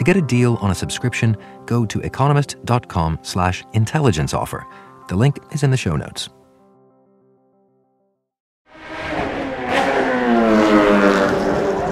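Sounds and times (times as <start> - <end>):
speech: 0.0 - 6.4
Formula One racing car engines roaring: 8.7 - 11.9.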